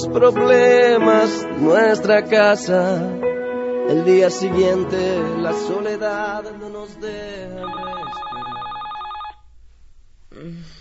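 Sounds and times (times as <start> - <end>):
speech: 0.0 - 3.3, 3.9 - 7.9
hiss: 0.0 - 10.8
telephone ringing with a warbling trill: 7.5 - 9.4.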